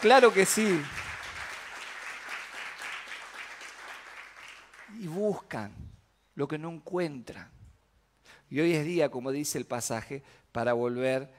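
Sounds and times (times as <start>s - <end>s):
speech: 0.0s - 1.0s, 5.0s - 5.8s, 6.4s - 7.6s, 8.5s - 11.3s
church congregation applause: 0.0s - 5.4s.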